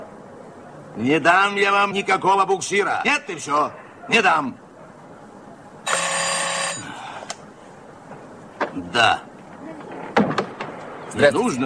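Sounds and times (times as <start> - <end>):
speech: 1.0 - 4.6, 9.0 - 9.3, 11.2 - 11.6
old telephone bell ringing: 5.9 - 6.9.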